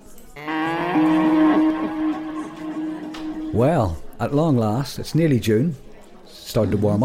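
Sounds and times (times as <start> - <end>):
cow mooing: 0.4 - 3.6
speech: 3.6 - 7.0.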